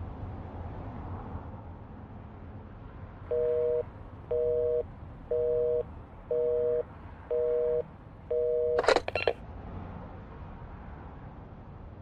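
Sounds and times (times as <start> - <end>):
low hum: 3.2 - 9.4
telephone busy tone after a call: 3.3 - 9.4.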